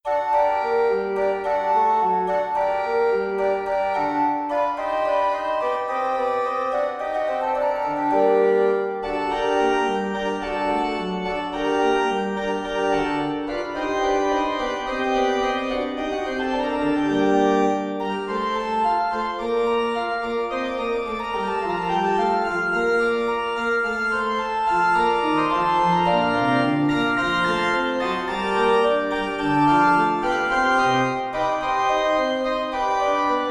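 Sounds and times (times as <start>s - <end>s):
organ piece in G minor: 0.1s - 33.4s.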